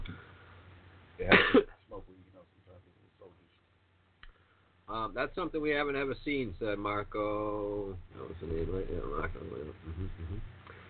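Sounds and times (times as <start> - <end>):
person coughing from weed smoke stuck in the throat: 1.2 - 1.8
speech: 5.2 - 10.6.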